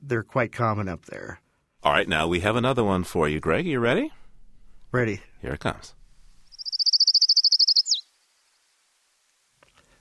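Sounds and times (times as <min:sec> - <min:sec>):
speech: 0:00.1 - 0:04.2, 0:04.9 - 0:06.0
Colima warbler song with high trill: 0:06.5 - 0:08.1.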